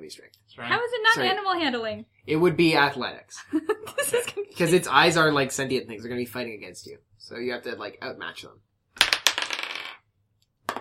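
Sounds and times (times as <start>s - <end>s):
speech: 0.1s - 8.7s
laughter: 3.4s - 4.8s
dice rolling on a hard tabletop: 9.0s - 10.7s.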